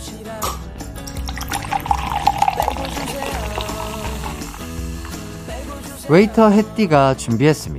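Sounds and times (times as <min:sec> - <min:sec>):
music: 0:00.0 - 0:07.7
cola being poured into a glass: 0:01.0 - 0:05.6
speech: 0:06.1 - 0:07.7.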